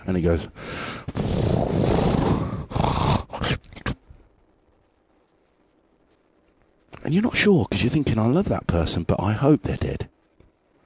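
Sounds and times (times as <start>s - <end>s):
speech: 0.0s - 1.8s, 7.1s - 10.1s
choppy imitated snorts: 0.7s - 4.0s
person vocally imitating loud snoring: 1.1s - 3.9s.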